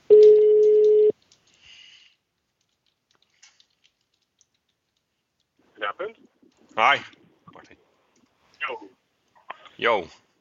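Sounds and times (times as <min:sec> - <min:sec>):
outgoing telephone call ringing tone: 0:00.1 - 0:01.1
speech: 0:06.8 - 0:07.8, 0:09.8 - 0:10.2.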